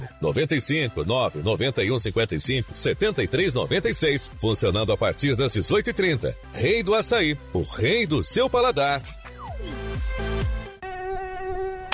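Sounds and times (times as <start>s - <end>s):
speech: 0.2s - 9.8s
dengue mosquito whine buzzing: 9.6s - 11.9s.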